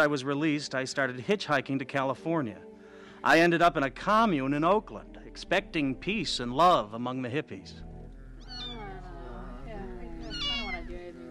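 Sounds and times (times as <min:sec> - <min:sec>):
speech: 0:00.0 - 0:07.9
dying kitten meowing in distress: 0:08.4 - 0:09.0, 0:10.2 - 0:10.9.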